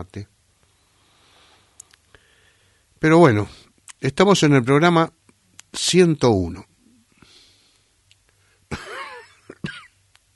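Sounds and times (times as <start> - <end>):
speech: 0.0 - 0.4, 3.0 - 6.7
raspy wheezy coughing from a speaker getting over a cough: 8.7 - 9.9.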